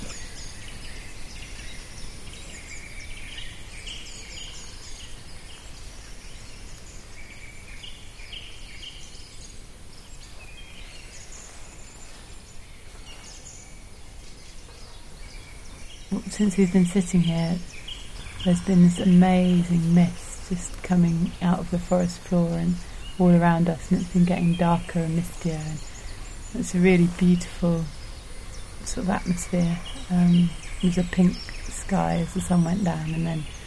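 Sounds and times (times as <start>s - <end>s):
dense chorus of birds chirping and trilling in a misty forest at dusk: 0.0s - 33.6s
steady low rumble of ambient noise: 15.8s - 33.6s
speech: 16.1s - 17.8s, 18.4s - 25.9s, 26.5s - 28.0s, 28.8s - 33.6s.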